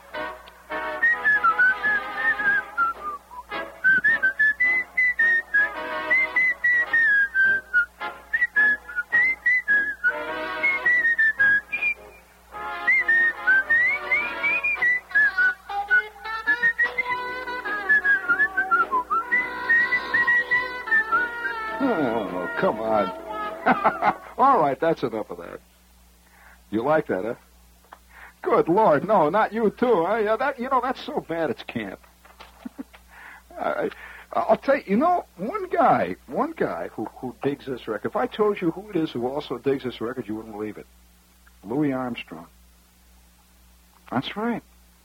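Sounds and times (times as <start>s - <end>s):
person whistling a tune: 1.0s - 12.2s, 12.8s - 22.5s
laughter: 23.4s - 24.4s, 32.5s - 33.0s
speech: 24.8s - 25.7s, 26.7s - 27.4s, 28.5s - 32.0s, 33.8s - 41.0s, 41.7s - 42.6s, 44.1s - 44.7s.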